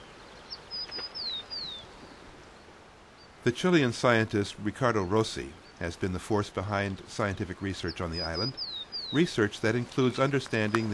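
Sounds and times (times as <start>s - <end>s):
tern circling over a river mouth chirping: 0.0s - 3.6s, 7.2s - 10.9s
soft hiss: 0.0s - 10.9s
speech: 3.4s - 10.9s.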